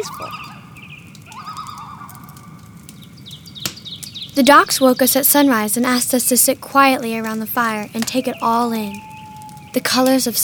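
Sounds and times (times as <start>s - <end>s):
speech: 0.0s - 0.7s, 4.4s - 9.1s, 9.7s - 10.4s
loon calls over misty water at sunrise: 0.0s - 3.2s, 7.9s - 10.4s
low steady outdoor hum: 0.0s - 10.4s.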